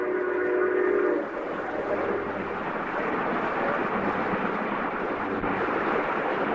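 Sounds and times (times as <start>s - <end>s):
steam locomotive whistle blast: 0.0s - 2.4s
steam locomotive train passing through countryside: 0.0s - 6.5s.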